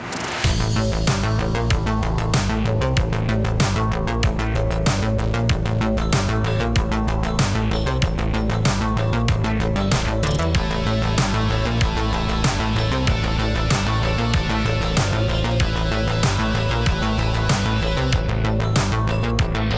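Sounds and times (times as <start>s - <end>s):
music: 0.0s - 19.7s.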